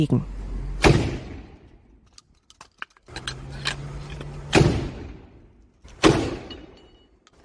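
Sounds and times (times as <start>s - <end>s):
speech: 0.0s - 0.3s
shotgun blasts: 0.8s - 1.7s, 4.4s - 6.7s.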